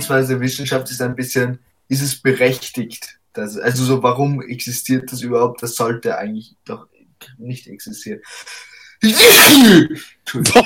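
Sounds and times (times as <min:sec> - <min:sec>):
speech: 0:00.0 - 0:10.6
loud sneeze: 0:09.0 - 0:10.0
short laugh from a person: 0:10.4 - 0:10.6.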